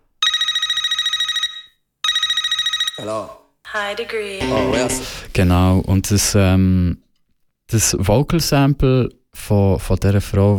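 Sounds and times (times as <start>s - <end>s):
trilling telephone ring from the intro of a music track: 0.2s - 3.0s
speech: 3.0s - 7.0s, 7.7s - 10.5s.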